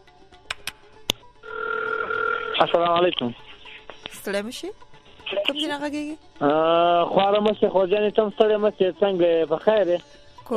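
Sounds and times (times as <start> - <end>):
sharp telephone line clicks: 0.5 - 1.2
telephone ringing for an incoming listener call: 1.4 - 2.8
speech: 2.6 - 3.4, 4.2 - 10.5.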